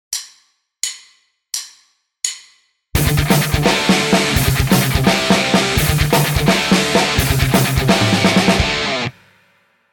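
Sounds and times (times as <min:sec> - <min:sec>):
guitar riff: 0:03.0 - 0:09.2.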